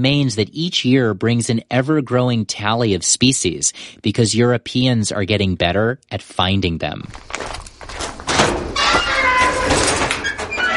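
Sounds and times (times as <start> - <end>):
speech: 0.0 - 7.6
garage door swinging open with a squealing metal creak: 7.2 - 10.7.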